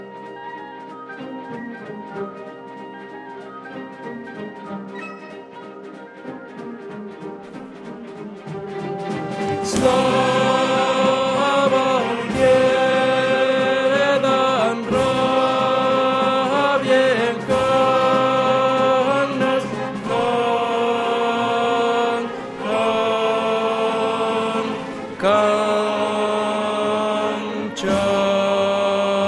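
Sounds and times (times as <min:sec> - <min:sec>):
bass voices singing opera dance piece: 0:09.4 - 0:29.2.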